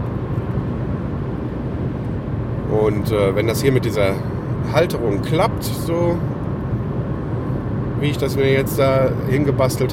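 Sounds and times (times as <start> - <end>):
road noise inside a moving one-year-old Ford Focus diesel estate car: 0.0 - 9.9
speech: 2.9 - 6.4, 8.0 - 9.9.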